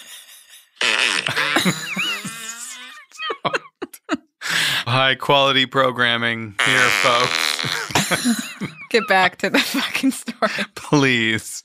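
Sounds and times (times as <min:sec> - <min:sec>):
laughter: 0:00.0 - 0:11.3
fart sound effect from a phone app: 0:00.8 - 0:02.8, 0:06.5 - 0:08.2
speech: 0:01.2 - 0:02.0, 0:05.0 - 0:11.6.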